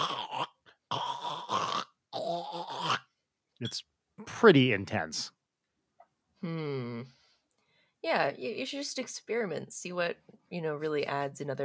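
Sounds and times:
person imitating loud snoring with their voice: 0.0 - 3.1
speech: 3.6 - 5.4, 6.4 - 7.2, 8.0 - 11.6.

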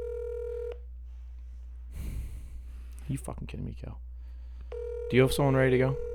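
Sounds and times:
outgoing ringback tone of an unanswered phone call: 0.0 - 0.8, 4.7 - 6.1
speech: 3.1 - 4.1, 5.1 - 6.1.

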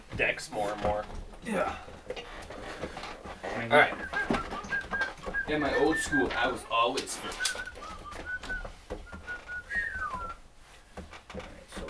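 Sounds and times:
speech: 0.2 - 2.2, 3.6 - 4.2, 5.5 - 7.7
person whistling a tune: 4.0 - 6.6, 7.2 - 10.4.

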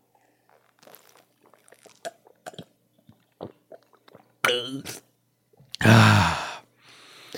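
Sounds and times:
sipping and swallowing water: 0.1 - 5.0.

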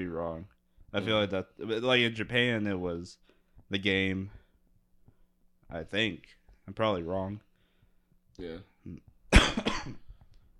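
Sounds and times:
speech: 0.0 - 4.4, 5.7 - 7.5, 8.4 - 10.0
voiced throat-clearing grunts: 8.4 - 10.1
person coughing harshly: 9.3 - 10.1.

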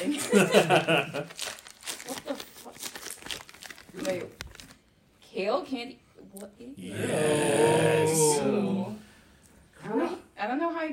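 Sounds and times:
laughter: 0.0 - 1.3
speech: 0.0 - 1.6, 5.5 - 6.0
red wrapping paper torn open from a box: 1.2 - 4.8
short vocal sound: 6.8 - 9.0.

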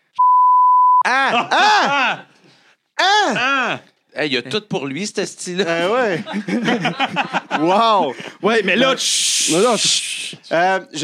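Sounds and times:
censor bleep over a spoken name: 0.2 - 1.1
speech: 1.0 - 2.3, 3.2 - 11.0
laughter: 1.1 - 2.4, 5.6 - 9.1.

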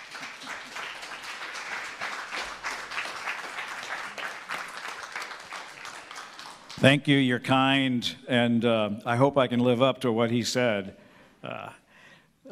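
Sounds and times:
church audience applauding: 0.0 - 6.9
speech: 6.8 - 11.6.

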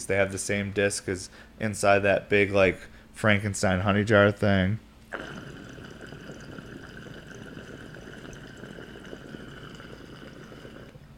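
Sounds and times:
speech: 0.0 - 5.5
water gurgling and bubbling through a large glass recycler pipe: 5.1 - 11.0.

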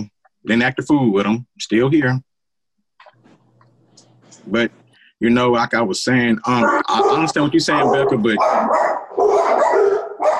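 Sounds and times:
speech: 0.0 - 2.3, 4.4 - 8.9
dogs barking in loud yaps: 6.4 - 10.3.

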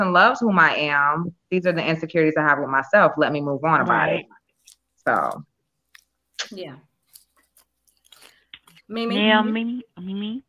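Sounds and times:
speech: 0.0 - 4.4, 5.0 - 5.5, 6.4 - 6.9, 8.9 - 10.4
crunching potato chips: 7.0 - 8.9
chewing noises: 7.0 - 9.2.

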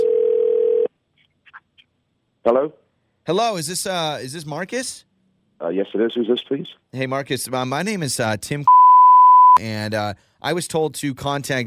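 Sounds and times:
loud steady telephone dial tone: 0.0 - 0.9
speech: 2.4 - 8.8, 9.6 - 11.6.

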